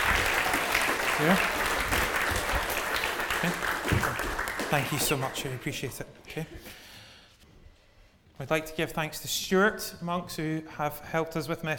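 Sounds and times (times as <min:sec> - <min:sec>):
audience applauding: 0:00.0 - 0:06.0
speech: 0:01.2 - 0:02.0, 0:04.7 - 0:06.8, 0:08.4 - 0:11.7.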